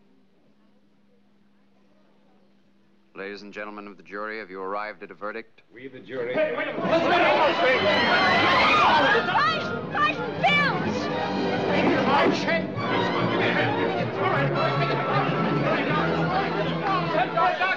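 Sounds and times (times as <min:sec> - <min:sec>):
speech: 0:03.2 - 0:10.3, 0:12.1 - 0:12.7
dense agitated crowd babble of overlapping voices: 0:06.4 - 0:17.7.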